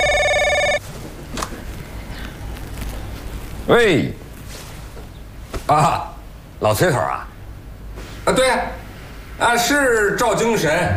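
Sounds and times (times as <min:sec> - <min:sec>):
telephone ringing with electronic trill: 0:00.0 - 0:00.8
quiet room noise: 0:00.0 - 0:10.9
speech: 0:03.7 - 0:04.2, 0:05.7 - 0:07.3, 0:08.3 - 0:08.8, 0:09.4 - 0:10.9.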